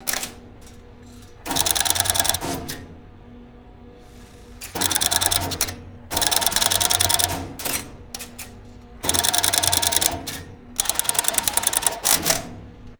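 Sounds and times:
rapid mechanical telephone exchange clicking: 1.2 - 2.9, 4.6 - 12.9.

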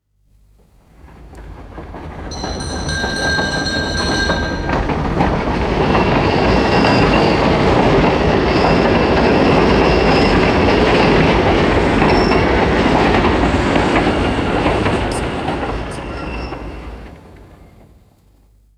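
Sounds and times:
vintage tram passing by: 0.5 - 18.6
vintage tram bell ringing: 2.2 - 17.1.

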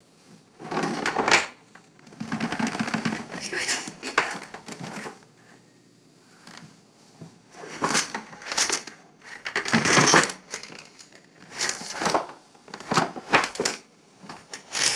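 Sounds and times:
rummaging through a wooden drawer: 0.6 - 1.5, 2.1 - 5.2, 7.6 - 14.9.

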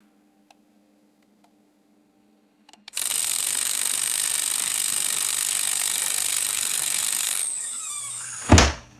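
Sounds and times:
mechanical timer ticking: 3.0 - 7.8.

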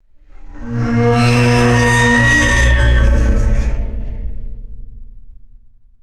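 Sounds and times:
heavy metal object screeching and dragging: 0.3 - 4.4.

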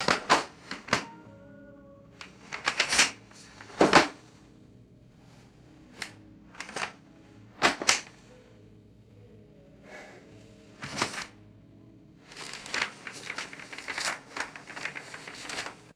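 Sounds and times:
pages flipping: 0.0 - 1.2, 2.2 - 4.4, 5.3 - 8.5, 10.8 - 11.4, 12.2 - 15.9
group handling books: 0.0 - 1.5, 2.1 - 4.6, 5.2 - 15.9.

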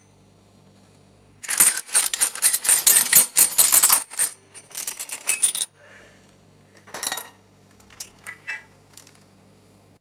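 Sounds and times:
metal cutlery dropping and clinking: 1.5 - 5.7, 6.9 - 9.2.

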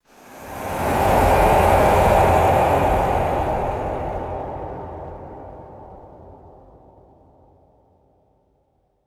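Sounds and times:
dark ethereal atmospheric wind swell: 0.1 - 6.1.

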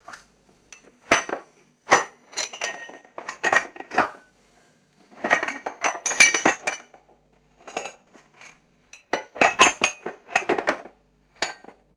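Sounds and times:
ceramic dishes clanking and rattling: 1.1 - 4.1, 5.2 - 7.0, 7.6 - 8.1, 9.0 - 11.8.

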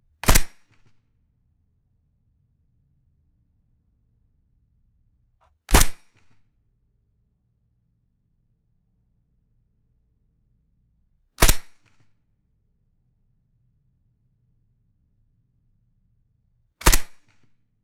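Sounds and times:
suppressed carbine single gunshots: 0.2 - 0.6, 5.7 - 6.0, 11.4 - 11.8, 16.8 - 17.2.

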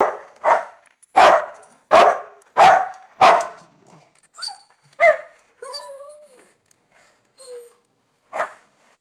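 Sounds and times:
distant deep gruff dog barks: 0.0 - 3.7, 8.3 - 8.6.

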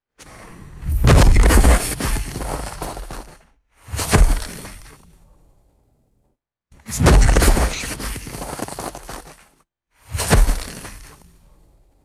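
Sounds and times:
heavy body falling into crunchy snow: 0.5 - 5.0, 6.9 - 9.4, 10.1 - 11.2.

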